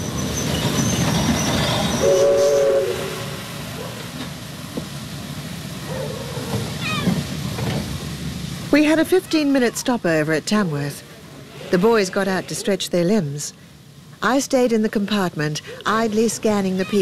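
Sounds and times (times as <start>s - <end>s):
steam train rumbling as it pulls into a station: 0.0s - 17.0s
steam train whistle: 1.9s - 3.4s
speech: 8.8s - 11.1s, 11.7s - 17.0s.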